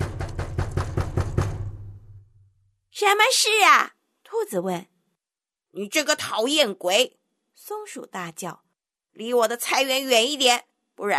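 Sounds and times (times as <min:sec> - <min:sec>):
hard angry knocking on a door: 0:00.0 - 0:02.2
speech: 0:03.0 - 0:04.9, 0:05.8 - 0:08.6, 0:09.2 - 0:11.1.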